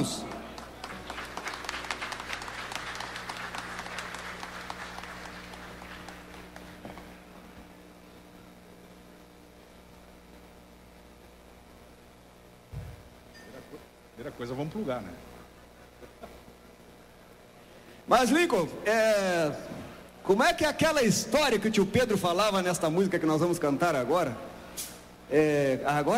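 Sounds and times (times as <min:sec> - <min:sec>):
speech: 0:00.0 - 0:00.3, 0:14.3 - 0:15.3, 0:18.1 - 0:26.1
crowd applauding for a singer and accordionist being introduced: 0:00.0 - 0:07.3
low hum: 0:00.0 - 0:26.1
thump: 0:12.7 - 0:13.1.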